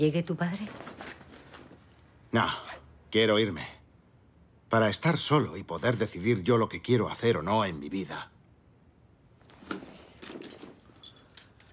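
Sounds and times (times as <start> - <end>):
speech: 0.0 - 1.1, 2.3 - 3.8, 4.7 - 8.3
bunch of keys jangling as they are handed over: 0.8 - 2.1, 10.0 - 11.7.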